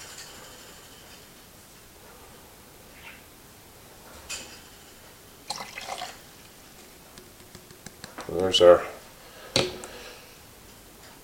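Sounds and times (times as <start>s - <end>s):
about 570 milliliters of warm water being poured into a container: 5.5s - 6.4s
faint water drips: 5.5s - 7.5s
speech: 8.4s - 8.9s.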